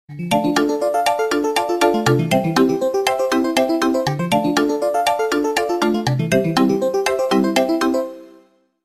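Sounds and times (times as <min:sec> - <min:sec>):
phone ringtone: 0:00.3 - 0:08.2.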